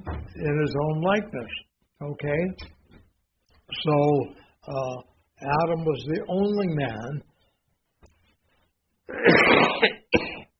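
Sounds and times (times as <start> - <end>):
speech: 0.4 - 2.8, 3.7 - 7.3
person clearing throat: 9.1 - 10.5
person coughing: 9.1 - 10.5.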